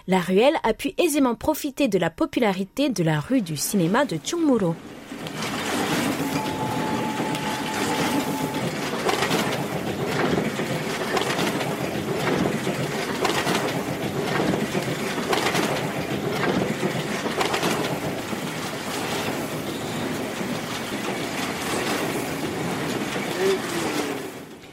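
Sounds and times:
speech: 0:00.0 - 0:05.5
printing presses running at full speed in an alley in Chungmuro: 0:03.8 - 0:24.7.

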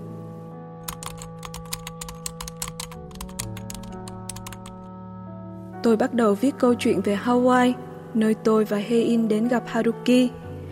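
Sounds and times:
low music: 0:00.0 - 0:10.7
typing on a computer keyboard: 0:00.8 - 0:04.9
speech: 0:05.8 - 0:10.4.

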